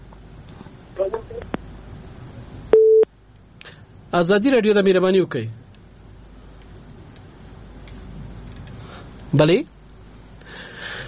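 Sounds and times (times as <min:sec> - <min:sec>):
telephone line beeps while a caller is connected to a phone-in: 0:02.7 - 0:03.1
speech: 0:04.1 - 0:05.6, 0:09.4 - 0:09.8.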